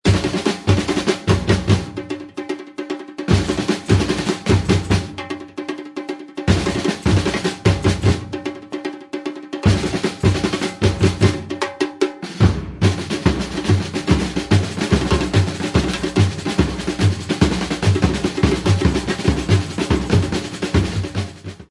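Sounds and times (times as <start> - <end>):
batucada drumming break: 0.0 - 21.7.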